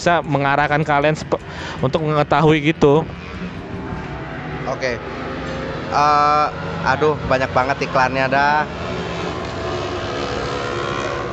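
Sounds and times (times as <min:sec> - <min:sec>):
speech: 0:00.0 - 0:03.4, 0:04.7 - 0:05.3, 0:05.9 - 0:09.0
motorcycles revving on a street: 0:00.0 - 0:11.3.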